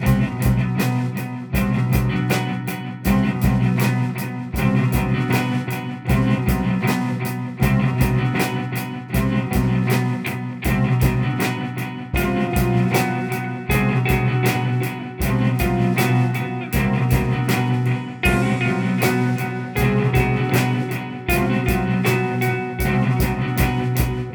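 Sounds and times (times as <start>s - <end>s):
acoustic bass: 0.0s - 0.8s, 1.6s - 2.3s, 3.0s - 3.9s, 4.6s - 5.4s, 6.1s - 6.9s, 7.6s - 8.4s, 9.2s - 9.9s, 10.7s - 11.4s, 13.7s - 14.5s, 15.2s - 24.3s
acoustic drums in a basement: 0.0s - 24.3s
electric guitar: 0.0s - 24.3s.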